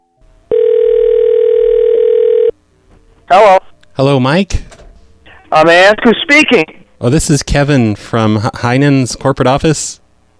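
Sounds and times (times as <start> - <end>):
electronic ringback tone of a phone call: 0.0 - 2.5
speech: 3.3 - 4.6, 5.5 - 10.0.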